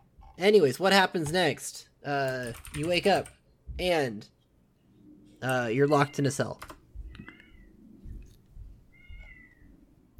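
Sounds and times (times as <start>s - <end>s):
speech: 0.4s - 4.4s, 5.4s - 6.8s
cat meowing: 8.9s - 9.6s.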